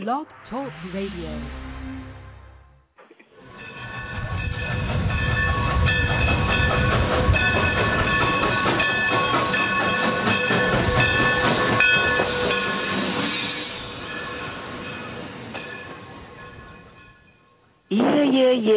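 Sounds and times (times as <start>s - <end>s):
speech: 0.0s - 1.7s, 18.4s - 18.7s
train rolling on tracks with rhythmic clatter: 3.4s - 17.9s.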